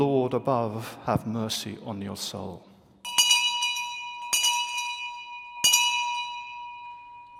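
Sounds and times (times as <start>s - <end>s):
speech: 0.0s - 2.7s
old hand bell ringing: 3.0s - 7.3s.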